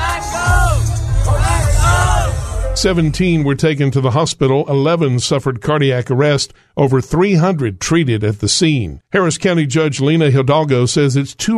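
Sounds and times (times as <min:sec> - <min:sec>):
concert crowd yelling and shouting during a crowd surge: 0:00.0 - 0:03.7
heavy rumbling low roar: 0:00.7 - 0:03.8
speech: 0:02.8 - 0:11.5.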